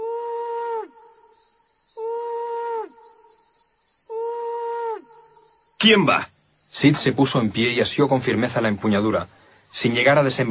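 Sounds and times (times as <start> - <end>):
owl hooting: 0.0 - 1.1, 2.0 - 3.4, 4.1 - 5.5
speech: 5.8 - 10.4.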